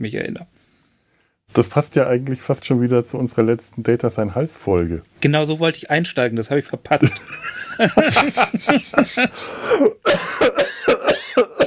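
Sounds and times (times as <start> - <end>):
speech: 0.0 - 0.6, 1.5 - 11.6
laughter: 7.0 - 9.4
voice imitating a fit of coughing: 9.1 - 11.6.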